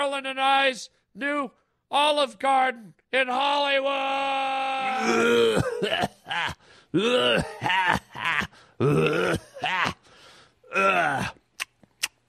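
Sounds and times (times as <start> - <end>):
speech: 0.0 - 8.0, 8.8 - 9.4
harsh rasping smoker's hacking cough: 5.0 - 10.0.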